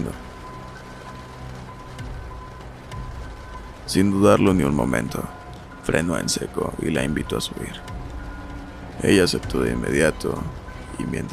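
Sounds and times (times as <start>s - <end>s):
rain falling steadily: 0.0s - 11.3s
speech: 3.9s - 8.0s, 9.0s - 11.3s.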